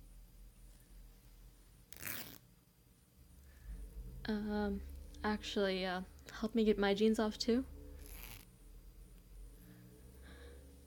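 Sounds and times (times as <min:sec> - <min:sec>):
quick zipper pull: 0:01.9 - 0:02.5, 0:08.0 - 0:08.5
speech: 0:04.3 - 0:07.7.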